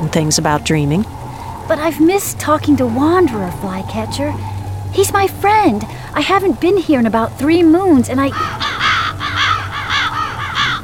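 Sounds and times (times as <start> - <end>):
low rumbling background: 0.0 - 10.8
speech: 0.1 - 8.8
flock of ravens cawing: 1.0 - 6.3, 8.1 - 10.8.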